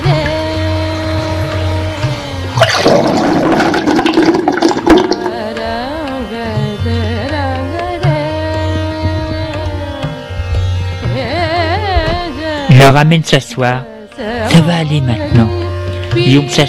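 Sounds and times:
sustained musical tones: 0.6s - 16.6s
toilet flushing: 2.6s - 5.4s
speech: 12.9s - 13.9s, 14.5s - 15.6s, 16.2s - 16.6s.

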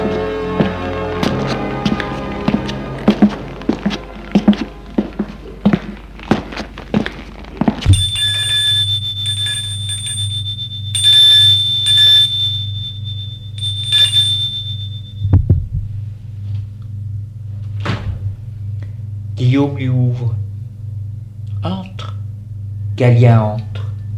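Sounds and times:
low hum: 0.0s - 24.1s
electronic doorbell ringing: 7.9s - 15.4s
speech: 19.6s - 20.4s, 23.0s - 23.7s.

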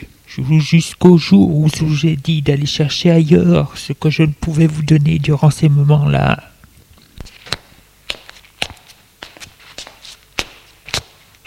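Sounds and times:
speech: 0.0s - 6.5s
footsteps of a woman walking: 7.2s - 11.4s.

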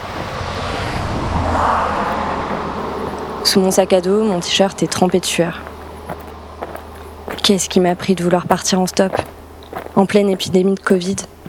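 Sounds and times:
car whooshing past on a road: 0.0s - 7.9s
steady traffic rumble: 0.0s - 11.4s
wind noise: 0.0s - 11.4s
speech: 3.5s - 5.7s, 7.5s - 9.4s, 10.0s - 11.3s.

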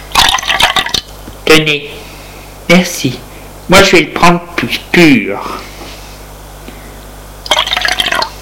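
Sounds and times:
milk poured into a cup: 0.1s - 1.0s, 7.5s - 8.3s
speech: 1.5s - 2.0s, 2.7s - 5.7s.

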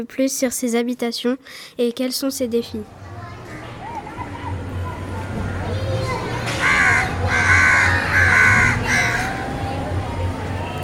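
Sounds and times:
speech: 0.0s - 3.2s
steady low hum of traffic in Mumbai: 2.5s - 10.8s
crows cawing in the Dharavi slum of Mumbai, India: 6.4s - 9.5s.

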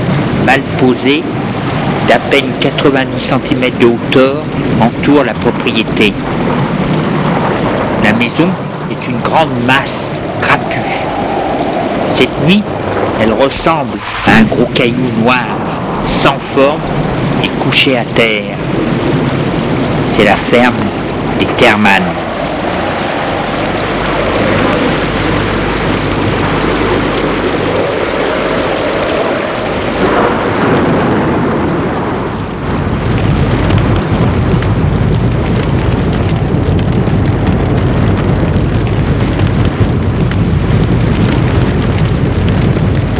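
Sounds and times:
deep continuous rolling thunder: 0.0s - 43.1s
steady wash of rain: 0.0s - 43.1s
speech: 0.5s - 1.5s, 2.1s - 6.7s, 8.0s - 11.0s, 12.1s - 19.0s, 20.2s - 22.2s.

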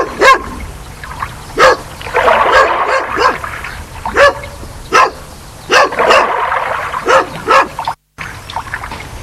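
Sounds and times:
dog barking at a swimming pool: 0.0s - 0.5s, 1.6s - 3.4s, 4.1s - 7.8s
watery splashing or trickling at a swimming pool: 0.6s - 4.6s, 5.8s - 9.2s.

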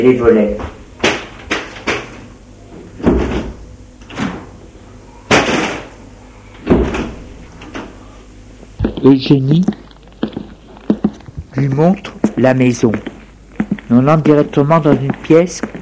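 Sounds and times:
speech: 0.0s - 0.8s, 9.0s - 9.8s, 11.6s - 13.1s, 13.9s - 15.8s
wooden door banging shut with a short rattle: 0.6s - 2.2s, 3.0s - 4.6s, 5.3s - 6.0s, 6.6s - 7.8s.

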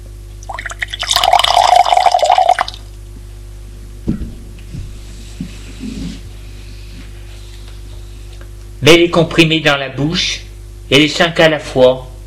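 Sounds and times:
water poured into a bathroom rinsing glass: 0.5s - 2.8s
speech: 8.8s - 12.1s.

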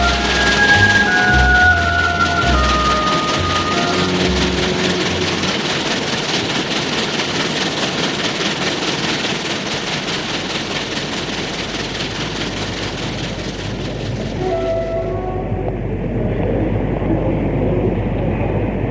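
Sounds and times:
tonal notes: 0.0s - 6.0s, 13.6s - 18.5s
train pulling into a small-town station: 0.0s - 18.9s.

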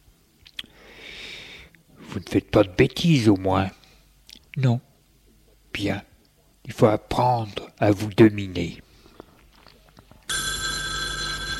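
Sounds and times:
faint noise: 0.0s - 11.5s
speech: 2.2s - 3.8s, 4.6s - 4.9s, 5.8s - 6.1s, 6.7s - 8.8s
telephone bell ringing with a multi-tone ring: 10.3s - 11.5s.

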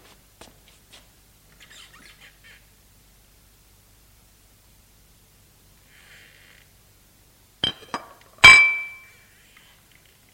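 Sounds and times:
dishes and cutlery clinking as soup is served: 7.7s - 9.1s.

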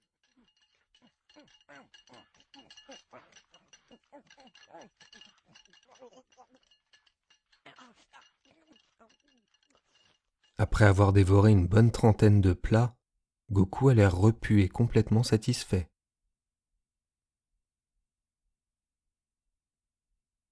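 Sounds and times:
cutlery clinking against bowls: 0.0s - 10.8s
speech: 4.5s - 6.9s, 10.6s - 15.9s.

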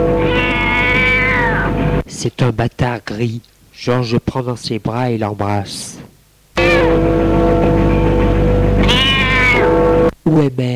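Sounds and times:
cat meowing: 0.2s - 1.8s, 8.8s - 9.9s
speech: 2.3s - 8.2s, 9.6s - 10.7s.

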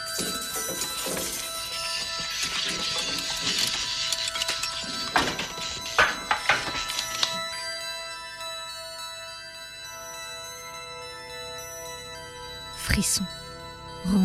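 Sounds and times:
metal pieces clashing and scraping together: 0.2s - 7.4s
speech: 13.1s - 13.4s, 14.1s - 14.2s.

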